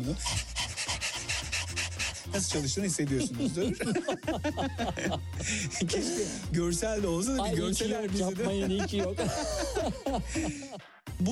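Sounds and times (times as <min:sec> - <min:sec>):
speech: 0:00.0 - 0:00.5, 0:02.3 - 0:11.2
person imitating a dog's panting as a breathing exercise: 0:00.0 - 0:03.6, 0:04.4 - 0:06.5, 0:08.9 - 0:10.9
laughter: 0:00.0 - 0:10.8.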